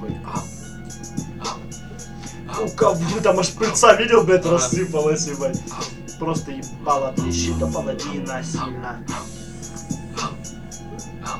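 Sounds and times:
faint rhythmic ticking: 0:00.0 - 0:11.3
speech: 0:02.6 - 0:09.3
person imitating a dog with yappy bark-like yelps: 0:07.2 - 0:08.3.

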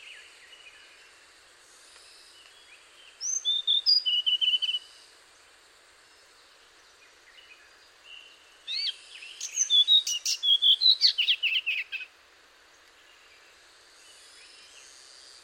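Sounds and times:
faint background hiss: 0:00.0 - 0:15.4
Hainan blue flycatcher Cyornis hainanus singing high whistles: 0:03.2 - 0:04.9, 0:08.7 - 0:12.1.

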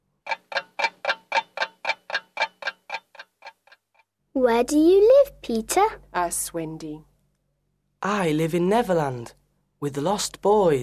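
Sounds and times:
large clock ticking: 0:00.1 - 0:04.0
speech: 0:04.4 - 0:07.1, 0:08.0 - 0:10.8.

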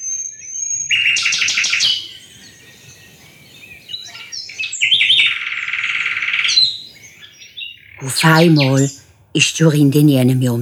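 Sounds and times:
nightingale singing in rattling trills: 0:00.7 - 0:10.6
speech: 0:08.0 - 0:10.6.

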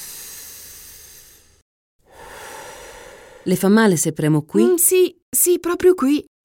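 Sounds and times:
patient breathing deeply on an examination couch during a medical examination: 0:00.0 - 0:03.5
speech: 0:03.4 - 0:06.4.

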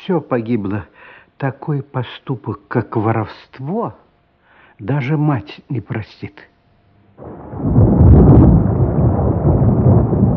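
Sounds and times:
speech: 0:00.0 - 0:04.0, 0:04.8 - 0:06.5, 0:07.2 - 0:07.9
thunder rumbling in a thunderstorm: 0:07.2 - 0:10.3.

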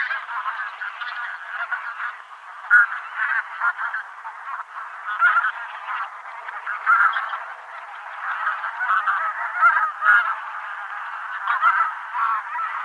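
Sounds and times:
Taiga bean goose flock Anser fabalis fabalis calling with nasal honks: 0:00.0 - 0:12.8.

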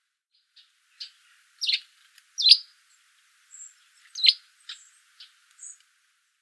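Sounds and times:
Eurasian tree sparrow chirping: 0:00.6 - 0:02.7, 0:03.5 - 0:05.8.

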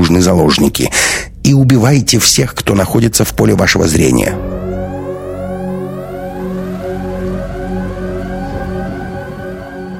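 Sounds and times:
speech: 0:00.1 - 0:04.5
steady low droning hum: 0:03.5 - 0:09.9
alarm sirens wailing under the metal ceiling of an airlock: 0:04.0 - 0:09.9.

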